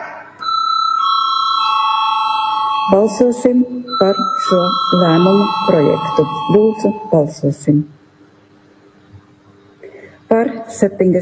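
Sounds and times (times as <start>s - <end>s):
parliamentary voting bell with electronic chime: 0.4s - 7.4s
speech: 2.9s - 8.0s, 10.7s - 11.2s.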